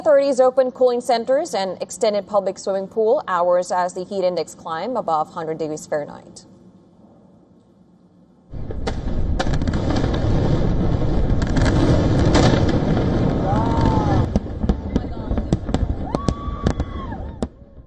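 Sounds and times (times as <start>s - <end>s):
speech: 0.0s - 6.5s
fireworks banging and crackling at Independence Day celebration: 8.5s - 17.8s
whistling firework rockets rising: 8.7s - 17.8s.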